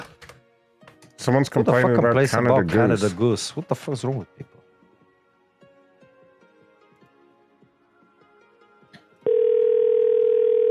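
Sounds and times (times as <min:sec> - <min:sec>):
speech: 0:01.2 - 0:04.6
telephone ringing with a steady electronic tone: 0:09.2 - 0:10.6.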